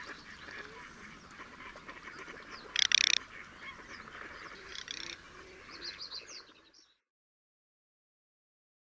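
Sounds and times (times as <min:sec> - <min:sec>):
small birds chirping: 0:00.0 - 0:07.1
garganey making a dry clicking rattle: 0:02.8 - 0:03.2, 0:04.7 - 0:05.2.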